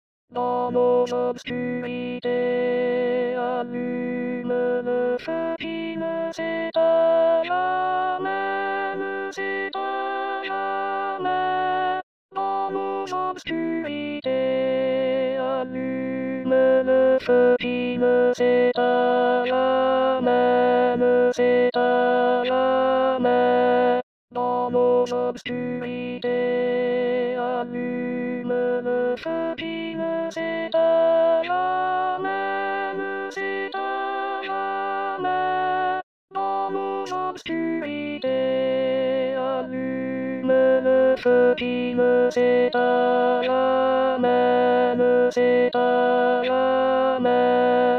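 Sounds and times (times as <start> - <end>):
alto voice part of a four-part choir: 0.4 - 47.9.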